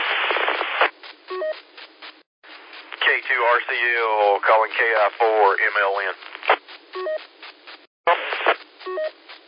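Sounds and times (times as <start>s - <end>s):
rush of radio static: 0.0s - 9.4s
touch-tone telephone dialing beeps over a narrowband radio channel: 1.3s - 1.6s, 7.0s - 7.3s, 8.8s - 9.2s
speech: 3.3s - 6.3s.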